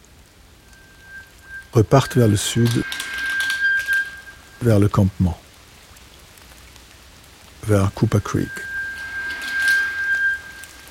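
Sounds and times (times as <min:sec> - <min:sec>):
thin high whistling tone: 0:00.0 - 0:05.4, 0:07.6 - 0:10.8
steady rain falling at the start of the rainy season: 0:00.0 - 0:10.8
speech: 0:01.7 - 0:03.2, 0:04.6 - 0:05.4, 0:07.7 - 0:08.7.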